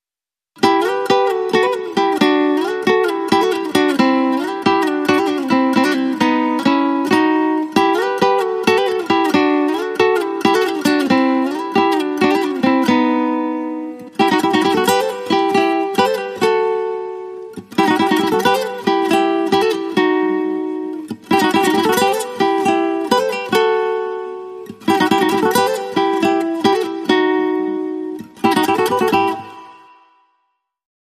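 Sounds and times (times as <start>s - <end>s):
Spanish guitar playing: 0.6s - 30.4s.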